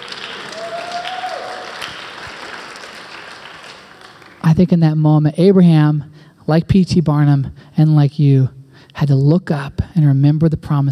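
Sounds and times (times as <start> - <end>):
crowd clapping: 0.0 - 4.6
speech: 4.5 - 10.9.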